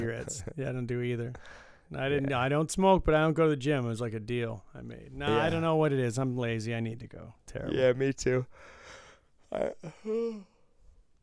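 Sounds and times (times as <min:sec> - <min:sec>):
speech: 0:00.0 - 0:08.8, 0:09.5 - 0:10.5
person yawning into the microphone: 0:09.5 - 0:10.6.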